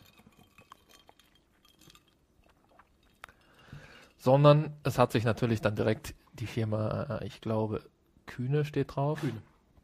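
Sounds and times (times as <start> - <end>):
glasses clinking together in a toast: 0.0 - 2.4
speech: 4.2 - 9.5.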